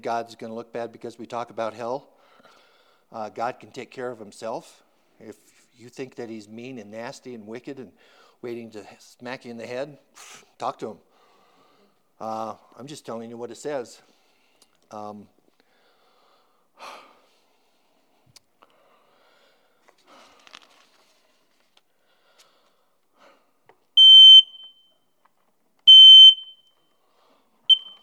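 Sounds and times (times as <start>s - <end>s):
speech: 0.0s - 2.2s, 3.1s - 11.1s, 12.2s - 14.1s, 14.9s - 15.4s
household smoke alarm beeping: 24.0s - 25.0s, 25.9s - 26.8s, 27.7s - 28.0s.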